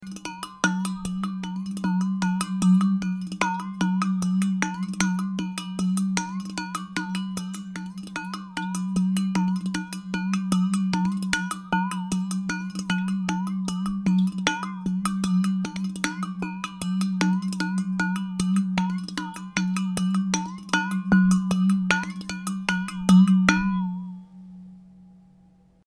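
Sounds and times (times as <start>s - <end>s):
gourd percussion: 0.0s - 25.8s.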